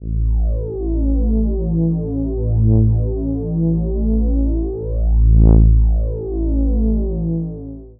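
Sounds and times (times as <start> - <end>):
dark reese bass drone in A: 0.0 - 7.9.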